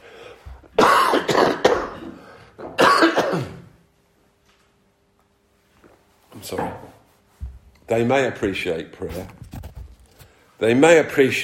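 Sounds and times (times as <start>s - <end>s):
person clearing throat: 0.8s - 3.7s
person coughing: 0.8s - 3.7s
speech: 6.5s - 6.9s, 7.9s - 9.4s, 10.6s - 11.4s.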